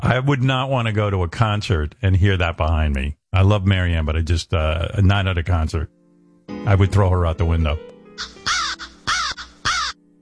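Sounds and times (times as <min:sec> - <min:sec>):
speech: 0:00.1 - 0:06.0, 0:06.6 - 0:08.3
crow cawing: 0:08.2 - 0:10.0.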